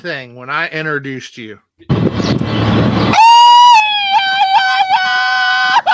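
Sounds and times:
speech: 0.0 - 3.3
burst of rough noise: 1.9 - 3.9
Mexican grito, long piercing high-pitched yell: 3.6 - 5.8.

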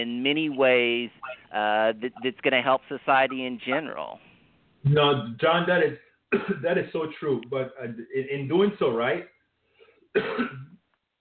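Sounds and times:
speech: 0.0 - 9.4, 10.1 - 10.7
harsh raspy cough from a sick person working: 6.3 - 6.7, 10.2 - 10.8.

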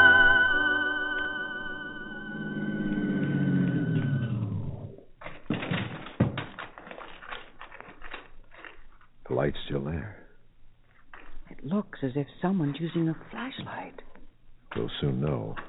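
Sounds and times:
car engine humming as the car pulls up and cuts out: 0.2 - 5.0
sharp clunks and rattles: 5.2 - 8.3
speech: 12.1 - 14.1, 14.8 - 15.6.

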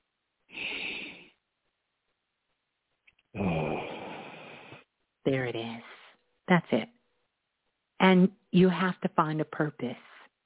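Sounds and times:
slow deep breath out through the mouth: 0.5 - 1.3, 3.4 - 4.8
speech: 6.5 - 6.9, 8.1 - 10.1.

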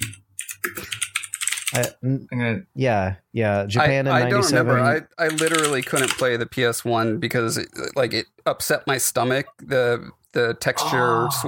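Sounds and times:
typing on a computer keyboard: 0.0 - 1.9, 5.2 - 6.3
speech: 1.8 - 11.4.

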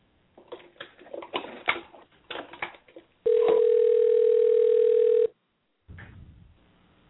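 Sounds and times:
telephone dial tone: 3.3 - 5.3.

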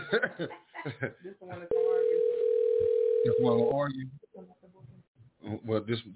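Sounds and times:
laughter: 0.0 - 1.3
speech: 0.1 - 2.0, 3.2 - 4.5, 5.4 - 6.1
tinny phone-filtered talking: 1.2 - 2.4, 3.2 - 6.1
buzzing ringback tone of an outgoing phone call: 1.7 - 3.7.

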